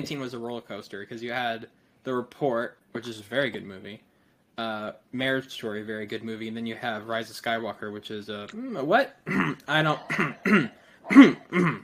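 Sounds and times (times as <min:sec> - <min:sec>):
speech: 0:00.0 - 0:11.8
person clearing throat: 0:08.6 - 0:11.8.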